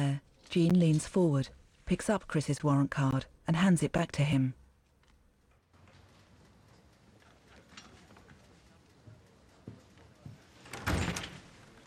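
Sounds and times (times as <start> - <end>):
speech: 0.1 - 4.6
door swinging and clattering: 10.6 - 11.7.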